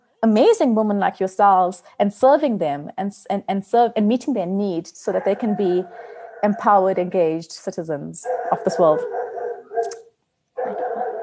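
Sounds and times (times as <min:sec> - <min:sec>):
speech: 0:00.2 - 0:09.2
dog barking and yelping: 0:05.1 - 0:07.0, 0:08.2 - 0:10.0, 0:10.6 - 0:11.2.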